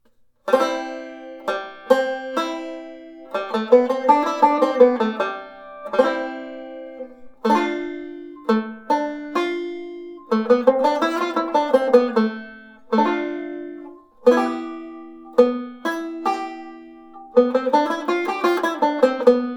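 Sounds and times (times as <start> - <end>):
chord melody playing: 0.6 - 19.2.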